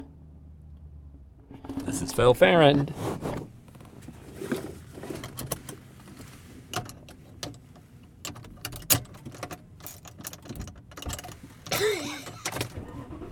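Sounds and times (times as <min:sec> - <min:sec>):
car interior rumble while driving: 0:00.0 - 0:13.3
speech: 0:02.0 - 0:03.3
clicks taps and rattles inside a driving car: 0:03.7 - 0:12.8.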